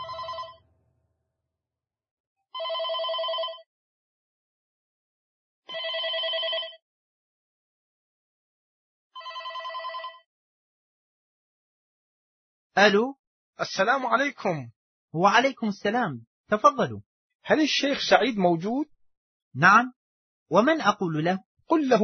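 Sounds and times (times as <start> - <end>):
telephone bell ringing with electronic trill: 0.0 - 0.8, 2.6 - 3.7, 5.7 - 6.8, 9.2 - 10.3
speech: 12.8 - 18.9, 19.6 - 22.0.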